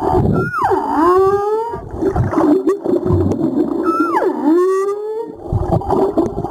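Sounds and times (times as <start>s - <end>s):
humpback whale song: 0.0s - 1.9s, 3.8s - 5.5s
watery rumble and crackle: 0.0s - 6.4s.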